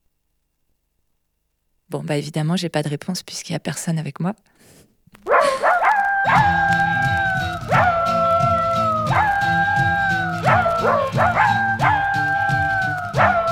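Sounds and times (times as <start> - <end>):
speech: 1.9 - 4.9
person imitating a big dog barking as a voice exercise: 5.2 - 13.5.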